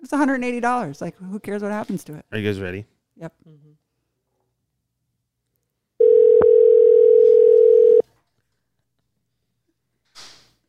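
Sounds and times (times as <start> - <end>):
speech: 0.0 - 3.7
telephone ringback tone over the line: 6.0 - 8.0.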